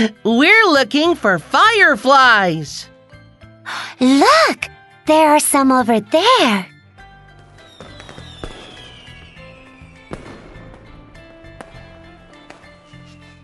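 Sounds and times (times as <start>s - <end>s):
speech: 0.0s - 2.9s, 3.7s - 6.7s
fireworks bursting with sharp bangs: 7.6s - 12.8s
fireworks fizzing and whistling: 7.7s - 10.1s.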